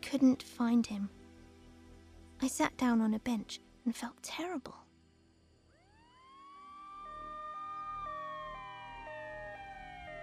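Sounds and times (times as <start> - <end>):
speech: 0.1 - 1.2, 2.4 - 4.8
fire engine sirens driving past very fast: 5.9 - 10.2.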